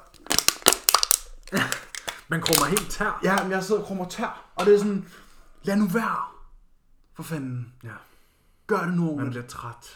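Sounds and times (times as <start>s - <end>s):
seated person crushing a drink can: 0.0s - 3.6s
speech: 1.5s - 6.3s, 7.2s - 8.1s, 8.7s - 9.9s.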